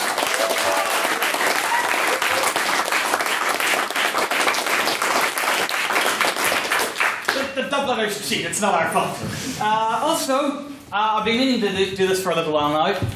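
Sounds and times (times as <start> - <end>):
debate audience applause in a debating house: 0.0 - 7.4
speech: 7.9 - 13.1.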